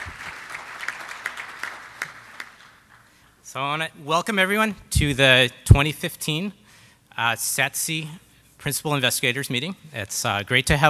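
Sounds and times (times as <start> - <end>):
audience applause in a room: 0.0 - 3.1
speech: 3.6 - 6.6, 7.2 - 10.8.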